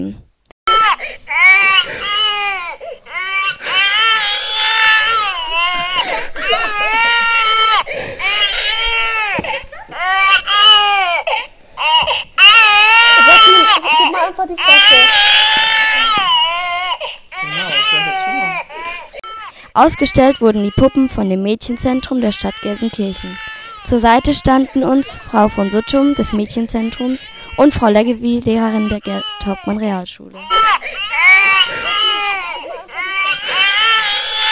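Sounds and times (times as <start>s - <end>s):
baby simulator doll crying: 0.7s - 34.4s
speech: 19.8s - 30.6s.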